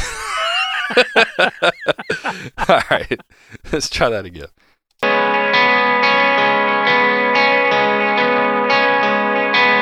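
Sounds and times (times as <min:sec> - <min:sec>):
laughter: 0:00.0 - 0:03.3
speech: 0:00.9 - 0:04.6
harsh distorted guitar playing buzzy chords: 0:05.0 - 0:09.8.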